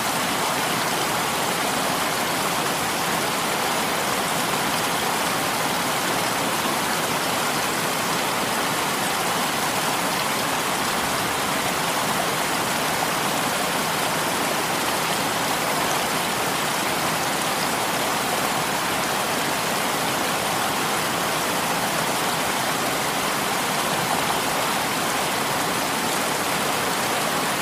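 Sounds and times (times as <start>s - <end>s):
waterfall pouring in a steady rush: 0.0s - 27.6s.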